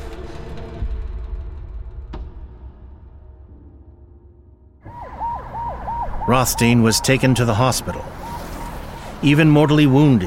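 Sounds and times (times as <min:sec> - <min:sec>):
ambulance siren wailing: 0:04.8 - 0:10.2
low traffic rumble: 0:04.8 - 0:10.2
speech: 0:06.3 - 0:08.2, 0:09.2 - 0:10.2.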